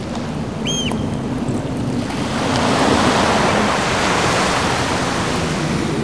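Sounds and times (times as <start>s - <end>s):
sea waves rolling in along a coastal path: 0.0s - 6.0s
wind buffeting on a coastal path: 0.0s - 6.0s
high chirping call: 0.6s - 1.0s.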